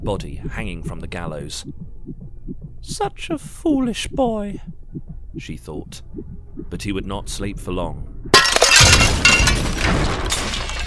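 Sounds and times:
speech: 0.0s - 1.9s, 2.8s - 4.8s, 5.4s - 8.1s
window glass smashing: 8.4s - 10.8s.

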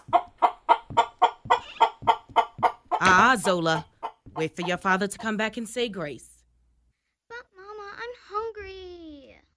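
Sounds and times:
pet chicken clucking: 0.0s - 4.9s
speech: 3.0s - 6.3s.

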